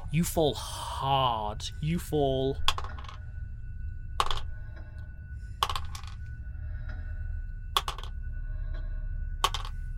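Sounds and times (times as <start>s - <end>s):
low rumble: 0.0s - 9.9s
speech: 0.1s - 2.8s
dice tumbling on a hard surface: 2.6s - 3.2s, 4.2s - 4.5s, 5.6s - 6.2s, 7.8s - 8.2s, 9.4s - 9.8s.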